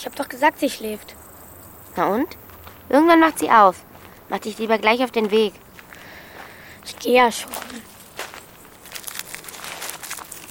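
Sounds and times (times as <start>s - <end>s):
speech: 0.0s - 1.2s, 2.0s - 5.6s, 6.9s - 7.9s
paper candy wrapper being folded back around a sweet: 8.7s - 10.5s.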